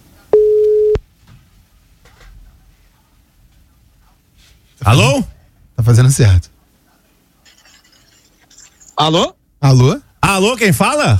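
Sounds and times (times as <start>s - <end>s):
telephone call tone while a phone number is dialed: 0.3s - 1.0s
speech: 4.8s - 6.5s, 9.0s - 11.1s.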